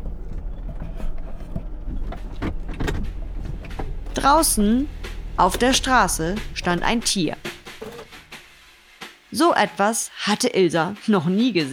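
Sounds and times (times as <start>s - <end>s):
sharp clunks and rattles: 0.0s - 8.7s
car coming to a sudden stop: 0.0s - 8.9s
speech: 4.2s - 7.5s, 9.4s - 11.7s.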